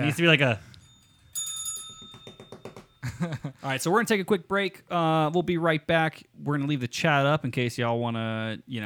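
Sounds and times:
speech: 0:00.0 - 0:00.7, 0:03.2 - 0:08.8
bright quick bell ring: 0:00.6 - 0:03.1.

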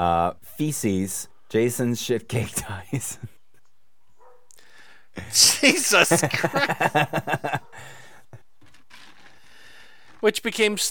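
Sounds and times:
speech: 0:00.0 - 0:03.3, 0:05.2 - 0:08.0, 0:10.2 - 0:10.8
dog barking and yipping: 0:04.2 - 0:04.5
laughter: 0:05.2 - 0:07.9.

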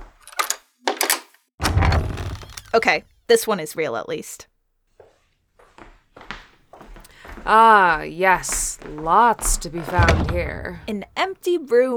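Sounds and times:
door handle rattling: 0:01.6 - 0:02.8, 0:09.5 - 0:11.2
speech: 0:02.8 - 0:04.5, 0:07.4 - 0:11.9.

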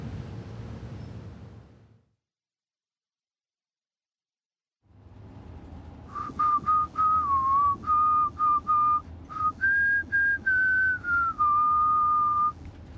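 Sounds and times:
person whistling a melodic tune: 0:06.1 - 0:12.6.

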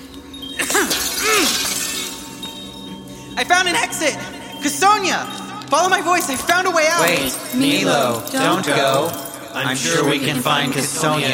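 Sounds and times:
mirror glass shattering: 0:00.0 - 0:03.1
tinkling mirror glass shards: 0:00.0 - 0:11.3
speech: 0:03.4 - 0:11.3.

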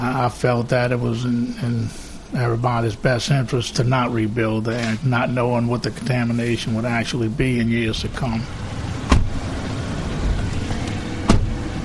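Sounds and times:
speech: 0:00.0 - 0:08.6
pickup truck engine rumbling heard from inside the cab: 0:00.0 - 0:11.8
road noise: 0:00.0 - 0:11.8
sharp thumps of the cab jolting over bumps: 0:09.0 - 0:09.5.

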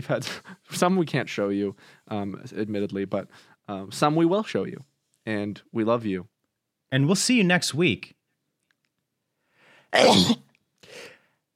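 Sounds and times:
speech: 0:00.0 - 0:06.3, 0:06.9 - 0:08.2, 0:09.9 - 0:10.4
intake of breath: 0:09.4 - 0:10.0, 0:10.8 - 0:11.4
sneeze: 0:10.0 - 0:10.5
breathy sniff: 0:10.8 - 0:11.3.

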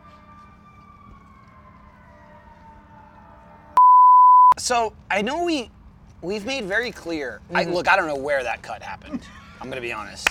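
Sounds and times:
low rumble of traffic: 0:00.0 - 0:03.8, 0:04.6 - 0:10.2
siren wailing outdoors: 0:00.0 - 0:03.8
loud flat electronic tone: 0:03.8 - 0:04.6
speech: 0:04.6 - 0:10.2.

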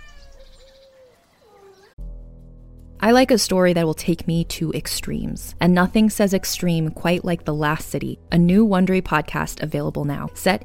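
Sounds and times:
cats meowing to greet arriving people: 0:00.0 - 0:01.9
speech: 0:03.0 - 0:10.6.

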